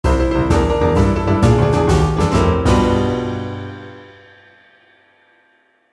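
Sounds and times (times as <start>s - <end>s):
boogie-woogie eyecatch jingle: 0.0s - 4.4s.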